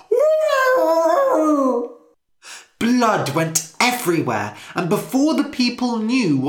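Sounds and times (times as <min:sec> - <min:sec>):
dog howling in pain: 0:00.0 - 0:02.0
speech: 0:03.0 - 0:06.4.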